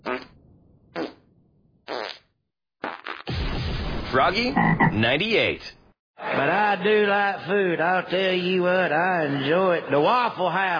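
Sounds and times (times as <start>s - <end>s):
fart sound effects: 0.0s - 3.6s, 4.3s - 5.1s
speech: 4.1s - 10.7s.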